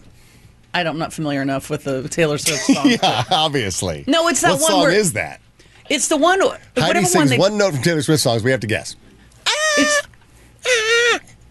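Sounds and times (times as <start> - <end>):
speech: 0.7 - 9.0, 9.8 - 10.1
laughter: 2.5 - 3.6, 9.5 - 10.1
goat screaming: 9.4 - 11.2.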